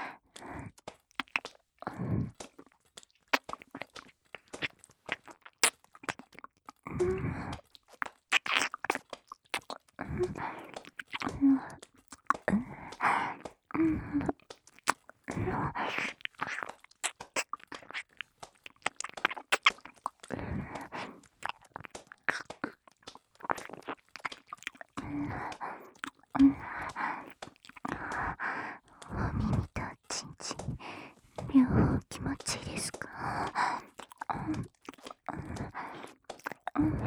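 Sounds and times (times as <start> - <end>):
wet licking and smacking mouth sounds: 0.0 - 37.0
soft breathy whisper-like sounds: 10.0 - 18.2, 19.2 - 37.0.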